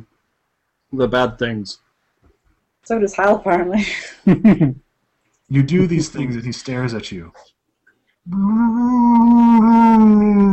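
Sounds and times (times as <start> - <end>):
speech: 0.9 - 1.8, 2.8 - 4.8, 5.5 - 7.6, 8.2 - 10.5
person imitating a whining animal with a nasal whine: 8.3 - 10.5.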